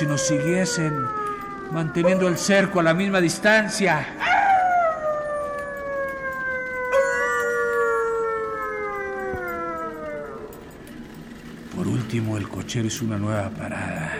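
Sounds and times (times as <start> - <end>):
speech: 0.0 - 4.3, 12.1 - 14.1
wolves howling at night: 0.0 - 12.7.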